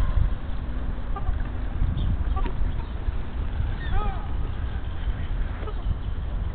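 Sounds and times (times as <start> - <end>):
black swans honking: 0.0 - 6.0
steady rumbling outdoor background: 0.0 - 6.5.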